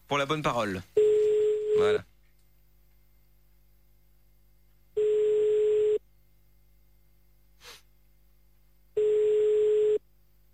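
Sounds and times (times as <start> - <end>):
speech: 0.1 - 1.0, 1.8 - 2.1
unanswered telephone call ringing tone: 5.0 - 6.0, 9.0 - 10.0
faint short breathy noise: 7.5 - 8.0.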